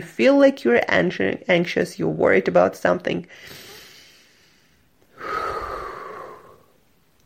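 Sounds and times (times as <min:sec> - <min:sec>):
speech: 0:00.0 - 0:03.6
slow deep belly breath as a stress-management breathing exercise: 0:03.3 - 0:06.8.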